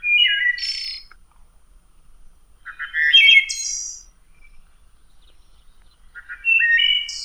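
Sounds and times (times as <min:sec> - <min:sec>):
male red-winged blackbird territorial call: 0:00.0 - 0:01.2, 0:02.6 - 0:07.2.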